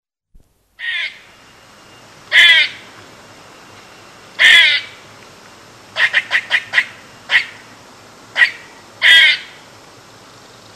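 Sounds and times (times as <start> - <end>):
Eastern gray squirrel making harsh nasal rasping calls and short chucks: 0.8 - 1.3, 2.3 - 2.9, 4.4 - 5.0, 6.0 - 9.6.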